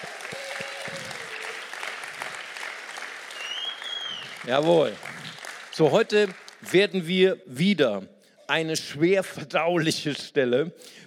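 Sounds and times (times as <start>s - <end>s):
room full of people applauding: 0.0s - 6.7s
whistles: 3.3s - 4.4s
speech: 4.4s - 5.1s, 5.8s - 11.0s.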